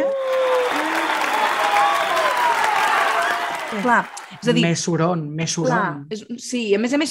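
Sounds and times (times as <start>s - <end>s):
crowd applause added in post-production: 0.0s - 4.7s
speech: 3.8s - 7.1s.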